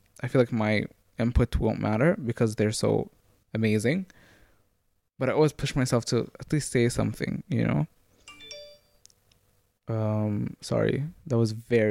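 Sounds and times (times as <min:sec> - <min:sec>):
speech: 0:00.2 - 0:04.2, 0:05.2 - 0:08.0, 0:09.9 - 0:11.8
mobile phone ringtone: 0:08.2 - 0:09.0.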